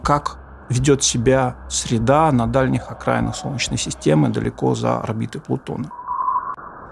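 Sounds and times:
speech: 0.1s - 6.0s
sonified Voyager 1 particle sensor data as whistling electronic tone: 5.8s - 6.8s.

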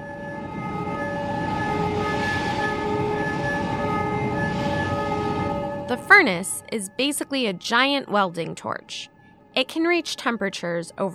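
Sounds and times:
alarm tones blaring at a plant: 0.0s - 11.1s
speech: 5.9s - 11.1s.

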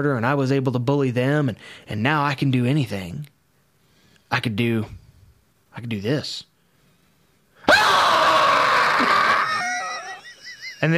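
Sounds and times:
speech: 0.0s - 3.3s, 4.3s - 5.0s, 5.8s - 6.5s, 10.8s - 10.9s
man screaming loudly: 7.7s - 10.2s.

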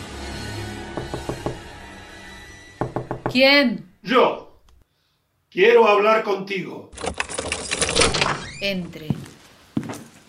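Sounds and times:
knocking on a door: 1.0s - 1.6s, 2.8s - 3.4s
speech: 3.3s - 4.4s, 5.5s - 7.1s, 8.6s - 9.2s.

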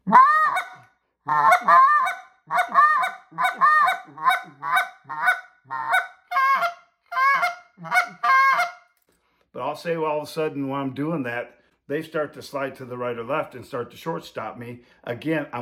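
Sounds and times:
medium-sized goose call blown loud with deep goose honks: 0.1s - 8.8s
speech: 9.8s - 15.6s.

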